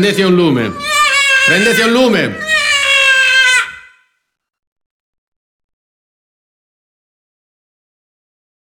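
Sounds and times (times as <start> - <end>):
speech: 0.0 - 0.9, 1.5 - 2.5
baby wailing: 0.4 - 4.1.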